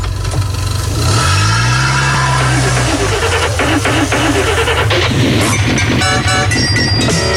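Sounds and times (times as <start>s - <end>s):
car engine revving: 0.0s - 7.3s
bright musical jingle: 3.8s - 7.3s.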